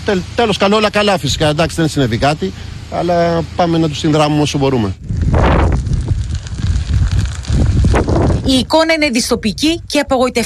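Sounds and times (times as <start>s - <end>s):
speech: 0.0s - 5.1s, 8.5s - 10.4s
strong wind roaring and buffeting the microphone: 4.9s - 10.4s.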